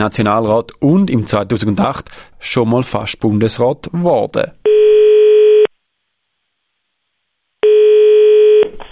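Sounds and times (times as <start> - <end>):
speech: 0.0 - 4.8
telephone ringing tone: 4.7 - 5.7, 7.6 - 8.7.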